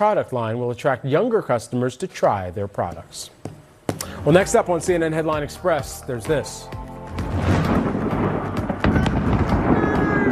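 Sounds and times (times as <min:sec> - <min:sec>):
speech: 0:00.0 - 0:03.6, 0:04.2 - 0:07.4
fireworks crackling and popping: 0:07.2 - 0:10.3
massive explosion rumbling roar: 0:07.2 - 0:10.3.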